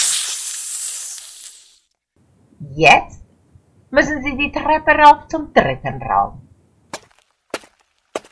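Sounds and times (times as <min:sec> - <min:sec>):
snake hissing: 0:00.0 - 0:01.8
speech: 0:02.6 - 0:03.2, 0:03.9 - 0:06.4.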